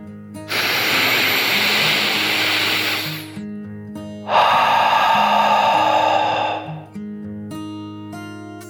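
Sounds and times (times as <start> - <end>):
dragon's slow deep breath in and out: 0.5 - 3.4, 4.2 - 7.0.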